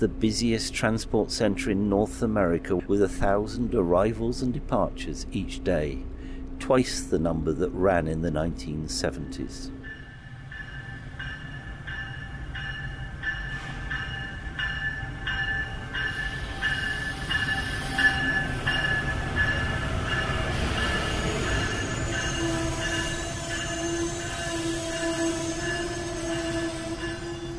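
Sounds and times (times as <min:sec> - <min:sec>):
speech: 0:00.0 - 0:09.8
passenger train low rumble: 0:00.0 - 0:27.5
passenger train wheels squealing: 0:09.8 - 0:27.5.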